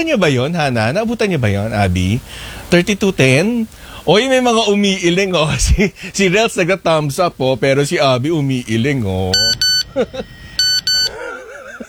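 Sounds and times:
speech: 0.0 - 10.4
laughter: 5.4 - 6.4, 9.1 - 11.8
mobile phone ringtone with buzzy beeps and warbling melodic tone: 9.3 - 11.5.

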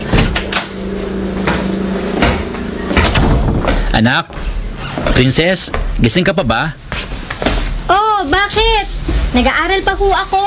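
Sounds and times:
house door being opened by someone arriving home: 0.0 - 5.5
clunks: 0.0 - 6.0
steady low hum: 0.0 - 10.4
speech: 4.0 - 4.4, 5.2 - 6.8, 7.9 - 10.4.

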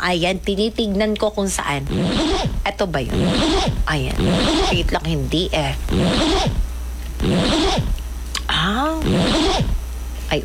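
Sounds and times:
speech: 0.0 - 6.6
zipper being pulled: 1.9 - 5.0, 5.9 - 8.0
short rising whine: 1.9 - 8.1, 8.9 - 9.9.

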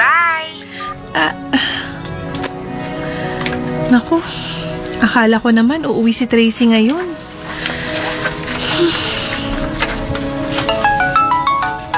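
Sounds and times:
steady noise: 0.0 - 11.9
speech: 5.0 - 7.2, 8.8 - 9.0
mobile phone ringtone for an incoming call: 10.7 - 11.9.

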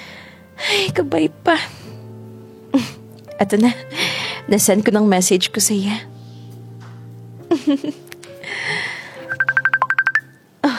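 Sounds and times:
speech: 0.8 - 1.9, 3.4 - 6.2, 7.6 - 8.1
mobile phone ringing with an incoming call: 9.2 - 10.4.

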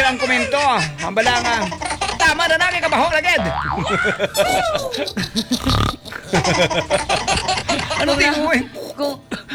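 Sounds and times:
laughter: 0.0 - 8.8
speech: 0.2 - 9.3
person imitating a pig grunting and snorting: 3.4 - 6.6.

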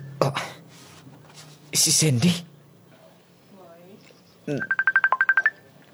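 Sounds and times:
speech: 0.2 - 0.5, 1.8 - 2.5, 4.5 - 4.8
cellphone ringing with an incoming call: 4.5 - 5.9.

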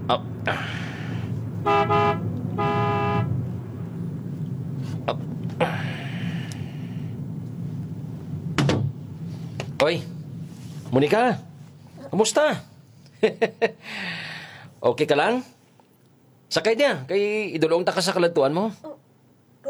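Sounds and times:
steady roadside traffic noise: 0.0 - 18.2
speech: 0.1 - 0.8, 1.6 - 2.3, 9.8 - 10.1, 10.9 - 11.5, 12.1 - 15.5, 16.5 - 18.9
car horn honking by a roadside: 1.6 - 3.6.

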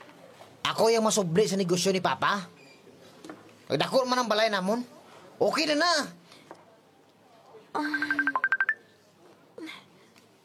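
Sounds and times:
speech: 0.7 - 2.6, 3.7 - 6.2, 7.8 - 8.2
cellphone ringtone of bright electronic beeping notes: 7.8 - 8.8.

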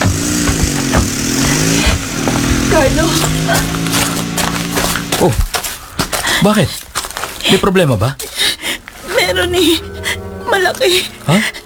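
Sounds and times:
motorized tricycle engine droning with small revving pulses: 0.0 - 5.5, 8.8 - 11.6
speech: 2.8 - 3.9, 5.2 - 5.5, 6.4 - 8.4, 9.3 - 9.9, 10.5 - 11.6.

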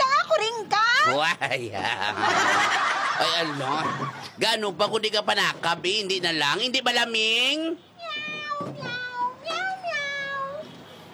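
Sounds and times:
speech: 0.6 - 8.9
laughter: 1.6 - 4.4
cat meowing: 8.0 - 10.8.

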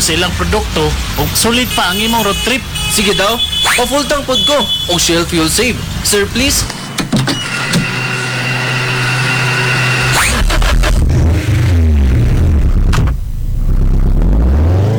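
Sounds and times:
speech: 0.0 - 7.6
car engine humming: 0.0 - 14.9
mechanical whirring and scraping: 6.6 - 13.2.

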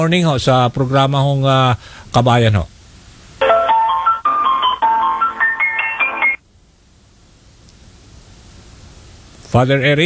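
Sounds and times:
speech: 0.0 - 2.7, 9.5 - 10.0
melodic phone ringtone on an outgoing call: 3.4 - 6.4.

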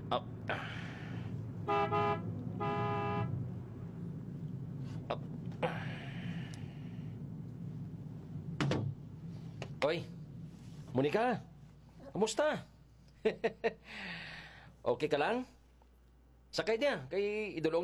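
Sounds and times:
steady vehicle rumble: 0.0 - 14.8
speech: 0.1 - 0.8, 9.9 - 10.1, 11.0 - 11.5, 12.1 - 15.6, 16.5 - 17.8
car horn honks: 1.6 - 3.6.

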